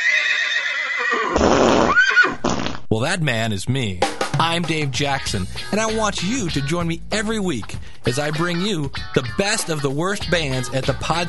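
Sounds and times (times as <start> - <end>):
horse neighing in a long high quivering whinny: 0.0 - 2.8
speech: 2.9 - 11.2.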